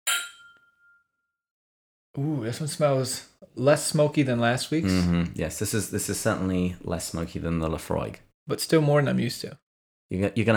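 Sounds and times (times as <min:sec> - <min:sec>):
two glasses clinking in a toast: 0:00.1 - 0:01.0
speech: 0:02.2 - 0:10.5.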